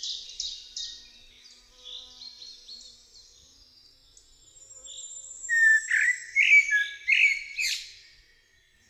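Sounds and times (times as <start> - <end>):
common blackbird singing: 5.5 - 8.0.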